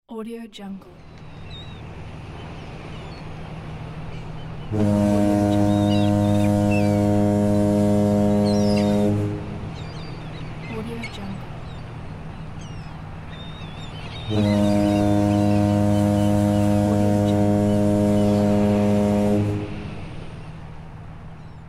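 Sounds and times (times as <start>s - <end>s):
sea port ambience: 0.1s - 21.6s.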